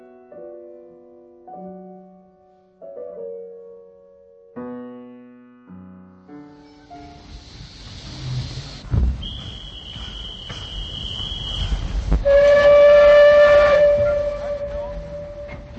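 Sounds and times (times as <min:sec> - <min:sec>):
train rumbling at a station: 0:06.5 - 0:15.7
train whistle: 0:07.9 - 0:15.7.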